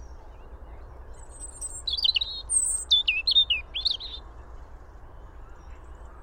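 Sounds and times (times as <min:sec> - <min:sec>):
European robin Erithacus rubecula singing: 0:00.0 - 0:04.2.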